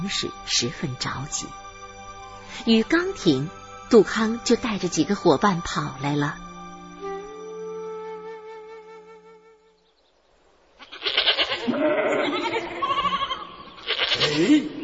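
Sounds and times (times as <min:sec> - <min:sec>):
speech: 0:00.0 - 0:01.6, 0:02.5 - 0:06.4
goats bleating: 0:10.8 - 0:14.8.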